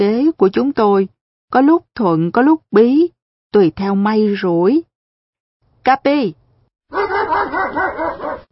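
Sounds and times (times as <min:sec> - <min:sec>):
speech: 0:00.0 - 0:04.9, 0:05.8 - 0:08.5
white poodle yapping barks: 0:06.9 - 0:08.5.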